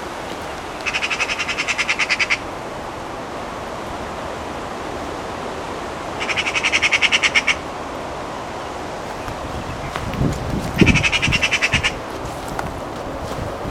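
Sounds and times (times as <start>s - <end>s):
wind: 0.0s - 13.6s
Pica pica Eurasian magpie giving harsh rattling chatters: 0.8s - 2.4s, 6.2s - 7.6s, 9.1s - 12.9s
rustling: 9.0s - 13.6s.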